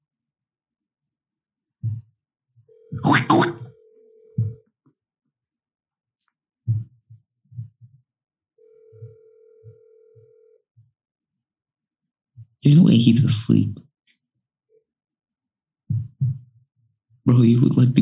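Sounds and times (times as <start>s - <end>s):
soft low thumping beats: 1.8s - 2.1s, 4.4s - 4.6s, 6.6s - 8.0s, 15.9s - 16.6s
phone call ringback tone: 2.7s - 4.6s, 8.6s - 10.6s
speech: 12.7s - 13.9s, 17.3s - 18.0s.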